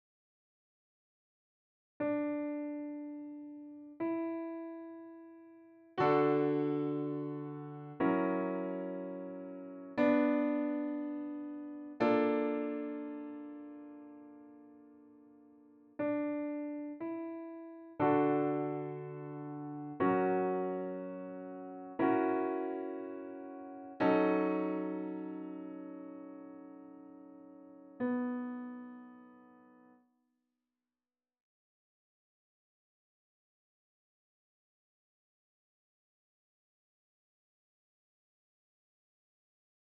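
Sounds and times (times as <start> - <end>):
D major piano sound: 2.0 - 30.0.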